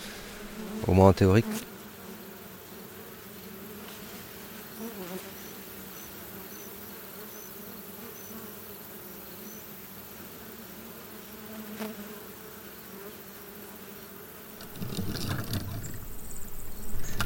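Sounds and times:
honeybees buzzing around a hive: 0.0s - 17.2s
speech: 0.8s - 1.7s.

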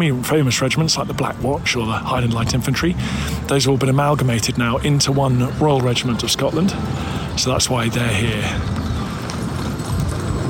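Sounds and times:
speech: 0.0s - 8.9s
wagon wheels rumbling: 0.0s - 10.4s
horse hooves clip-clopping: 8.6s - 10.4s.

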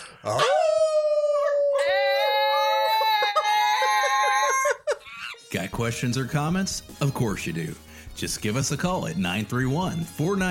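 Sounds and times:
speech: 0.2s - 0.6s, 5.5s - 10.4s
group of people imitating a wolf pack howl: 0.2s - 4.8s.

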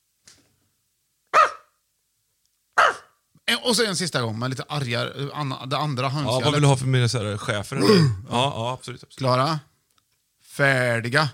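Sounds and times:
human voice imitating dog barks: 1.4s - 1.7s, 2.8s - 3.1s
speech: 3.5s - 9.7s, 10.6s - 11.3s.

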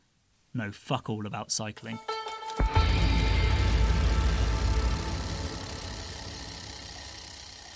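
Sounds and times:
speech: 0.6s - 2.3s
car engine accelerating: 2.8s - 7.7s.

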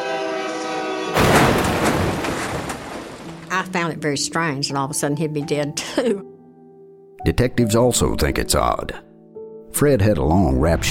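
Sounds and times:
train horn blast: 0.0s - 1.2s
loud broadband crashing roar: 1.2s - 3.6s
speech: 3.6s - 6.3s, 7.2s - 9.1s, 9.7s - 10.8s.

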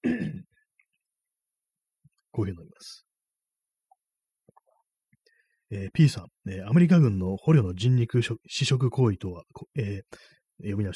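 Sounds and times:
gravelly throat clearing: 0.0s - 0.6s
speech: 2.4s - 3.1s, 5.7s - 10.9s
faint breath: 5.2s - 5.7s, 10.1s - 10.5s.

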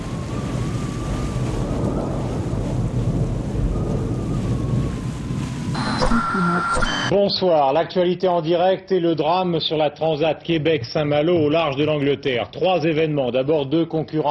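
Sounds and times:
buffeting wind: 0.0s - 6.8s
deep rumbling thunder: 0.0s - 6.8s
rushing rain: 0.0s - 7.1s
speech: 6.8s - 14.2s.

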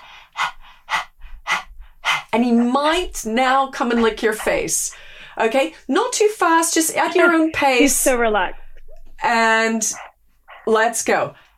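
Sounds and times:
person imitating dog panting with tongue out as yoga breathing exercise: 0.0s - 2.4s, 3.8s - 4.9s, 9.3s - 11.5s
speech: 2.3s - 8.6s, 9.2s - 11.4s.

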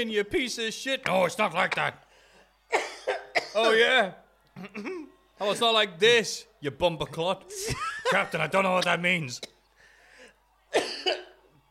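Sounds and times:
speech: 0.0s - 2.1s, 2.7s - 3.0s, 3.6s - 9.5s
harsh coughs: 1.6s - 2.0s, 2.7s - 3.8s, 4.6s - 5.1s, 10.7s - 11.4s
laughter: 7.4s - 9.4s.

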